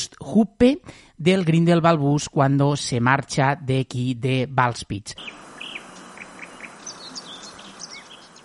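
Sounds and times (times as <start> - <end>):
soft steady hiss of mountain ambience: 0.0 - 8.4
speech: 0.2 - 5.4
high bird chirps and short calls in the Alps: 5.2 - 8.4.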